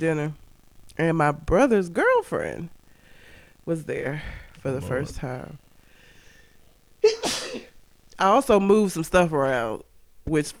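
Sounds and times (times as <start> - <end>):
speech: 0.0 - 0.4, 1.0 - 2.8, 3.6 - 5.6, 8.2 - 10.5
person sneezing: 7.0 - 7.7.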